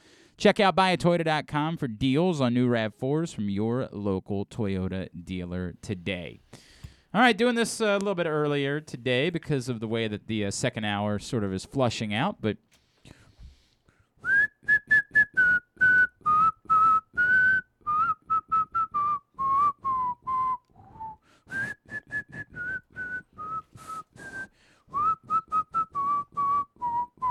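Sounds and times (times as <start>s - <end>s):
speech: 0.4s - 13.2s
person whistling into the side of a microphone: 14.2s - 27.3s.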